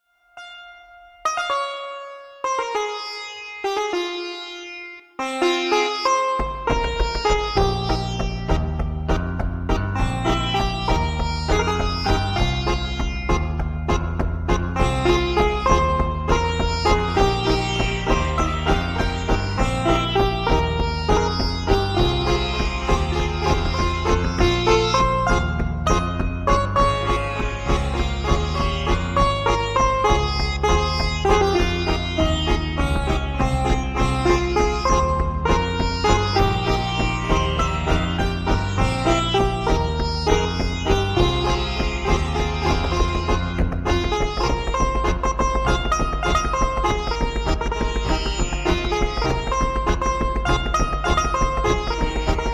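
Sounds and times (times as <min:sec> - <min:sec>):
virtual sitar playing: 0:00.0 - 0:52.5.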